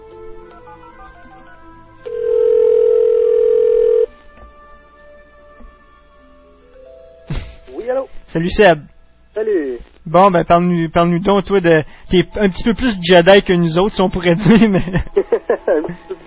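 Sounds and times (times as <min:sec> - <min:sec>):
faint tones: 0:00.0 - 0:16.2
telephone dial tone: 0:02.1 - 0:04.1
speech: 0:08.3 - 0:16.2
laughter: 0:14.3 - 0:16.2.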